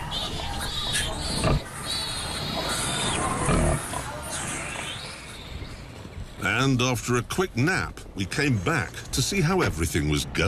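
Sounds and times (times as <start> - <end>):
newborn piglets and sow grunting and oinking: 0.0 - 5.3
speech: 6.6 - 10.4.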